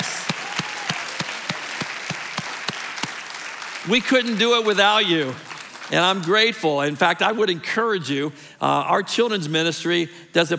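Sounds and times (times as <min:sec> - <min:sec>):
large church audience applauding: 0:00.0 - 0:06.4
speech: 0:03.9 - 0:10.5.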